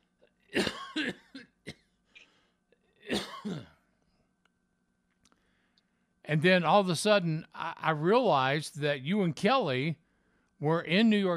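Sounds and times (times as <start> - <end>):
person clearing throat: 0.5 - 1.9, 2.9 - 3.8
speech: 6.3 - 10.0, 10.6 - 11.3.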